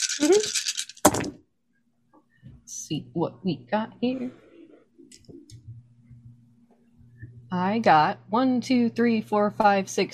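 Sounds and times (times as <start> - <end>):
dice rolled on a table in a game: 0.0 - 1.3
speech: 0.2 - 0.7, 2.9 - 4.4, 7.5 - 10.1
low hum: 2.0 - 10.1.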